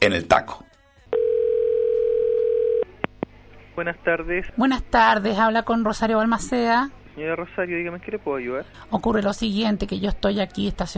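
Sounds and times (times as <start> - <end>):
speech: 0.0 - 0.7, 3.8 - 10.9
telephone line tone of an incoming call on a radio program: 1.1 - 2.9.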